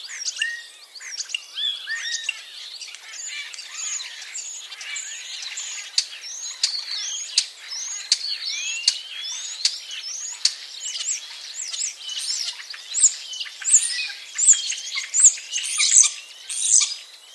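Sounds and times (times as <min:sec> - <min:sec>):
common starling singing: 0:00.1 - 0:17.3.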